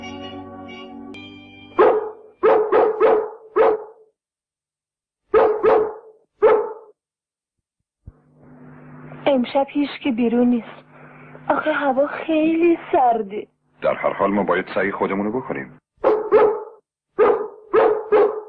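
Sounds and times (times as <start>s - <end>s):
dogs barking at night in London: 1.8s - 4.1s, 5.3s - 6.9s, 16.0s - 18.4s
speech: 9.4s - 10.8s, 11.6s - 15.8s.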